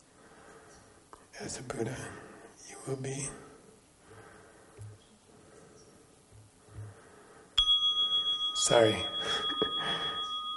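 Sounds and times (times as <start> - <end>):
speech: 1.4 - 2.2, 2.8 - 3.4, 8.7 - 9.6
meditation bell ringing: 7.6 - 10.5.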